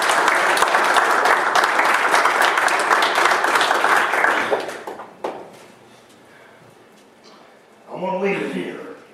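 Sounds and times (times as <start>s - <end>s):
congregation applauding: 0.0s - 5.4s.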